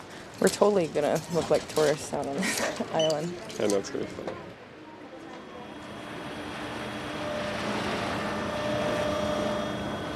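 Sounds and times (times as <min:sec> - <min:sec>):
speech: 0:00.4 - 0:04.6
boat engine droning as the boat pulls up to a pier in Honolulu Harbor Hawaii: 0:05.4 - 0:10.1.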